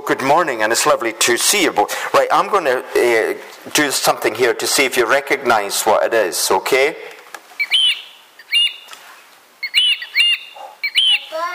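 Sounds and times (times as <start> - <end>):
speech: 0.1 - 7.2
bird calling in bright sharp chirping phrases: 7.6 - 9.0, 9.6 - 11.5.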